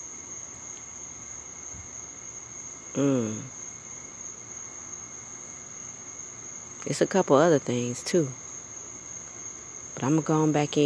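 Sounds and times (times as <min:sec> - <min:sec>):
crickets chirping at night: 0:00.0 - 0:10.8
speech: 0:03.0 - 0:03.6, 0:06.8 - 0:08.4, 0:10.0 - 0:10.8.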